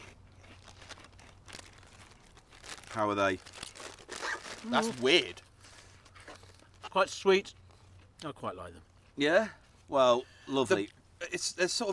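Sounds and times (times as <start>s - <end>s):
crunching skin-on potato crisps while eating: 0.0s - 8.0s
speech: 3.0s - 3.6s, 4.6s - 5.4s, 6.9s - 7.6s, 8.2s - 11.9s.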